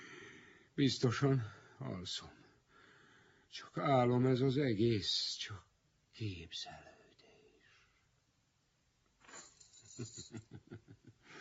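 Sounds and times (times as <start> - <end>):
speech: 0.8 - 2.4, 3.5 - 7.0, 10.0 - 11.4
bunch of keys tossed down and jangling: 9.2 - 10.5.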